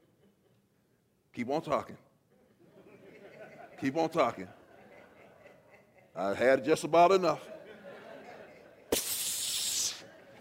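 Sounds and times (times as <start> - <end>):
speech: 1.4 - 2.1, 3.8 - 4.6, 6.2 - 7.5
laughter: 2.4 - 6.4, 7.3 - 8.9, 10.0 - 10.4
voice imitating a viper hiss: 8.9 - 10.1.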